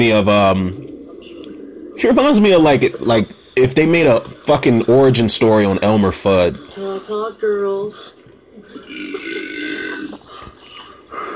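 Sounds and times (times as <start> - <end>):
speech: 0.0 - 0.8, 2.0 - 8.1
long loud drawn-out burp: 8.7 - 10.2.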